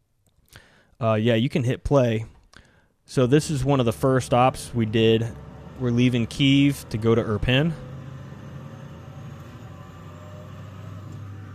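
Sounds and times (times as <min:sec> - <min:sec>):
speech: 0:01.0 - 0:02.4, 0:03.1 - 0:07.9
truck engine drone heard from inside the cab while driving: 0:03.1 - 0:11.5
road rumble heard from inside a truck cab: 0:03.3 - 0:11.5.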